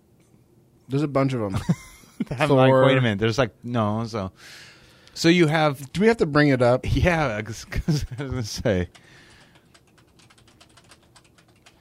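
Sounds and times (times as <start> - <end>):
speech: 0.9 - 9.2
typing on a mechanical computer keyboard: 8.0 - 11.8.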